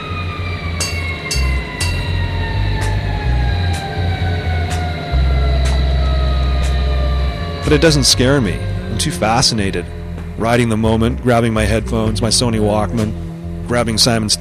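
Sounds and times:
emergency vehicle sirens wailing: 0:00.0 - 0:14.3
heavy rumbling engine: 0:00.0 - 0:14.3
sharp clicks or bangs: 0:00.8 - 0:07.1
speech: 0:07.7 - 0:14.3.

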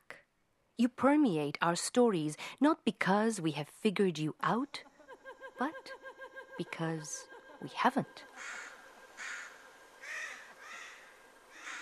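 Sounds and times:
speech: 0:00.8 - 0:04.9, 0:05.6 - 0:06.0, 0:06.6 - 0:08.6
laughter: 0:04.8 - 0:10.6
crows cawing: 0:08.2 - 0:11.8.

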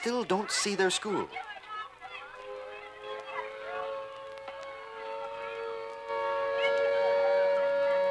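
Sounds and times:
speech: 0:00.0 - 0:01.5
crowd of children chattering and calling: 0:00.0 - 0:08.0
steady droning siren wailing: 0:02.0 - 0:08.0.

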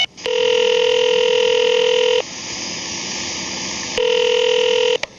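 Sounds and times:
steady telephone dial tone: 0:00.2 - 0:02.2, 0:03.9 - 0:05.0.

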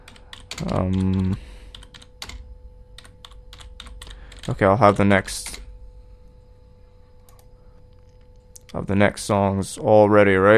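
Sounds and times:
typing on a computer keyboard: 0:00.1 - 0:04.6
speech: 0:00.6 - 0:01.5, 0:04.5 - 0:05.6, 0:08.8 - 0:10.5.

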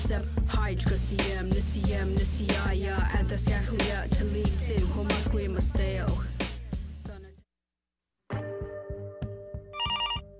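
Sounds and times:
speech: 0:00.1 - 0:06.4
telephone ringing in bright repeated bursts: 0:09.8 - 0:10.3.

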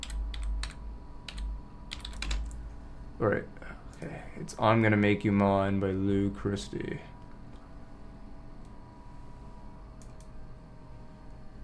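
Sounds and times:
computer keyboard typing: 0:00.0 - 0:02.6
low hum: 0:00.0 - 0:11.6
speech: 0:03.2 - 0:07.1.

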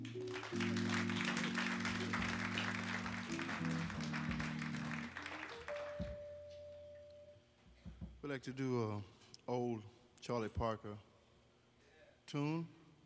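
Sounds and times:
audience applause for a jazz quintet: 0:00.0 - 0:06.3
low sustained instrument notes: 0:00.0 - 0:07.4
speech: 0:08.3 - 0:11.1, 0:12.3 - 0:12.8.

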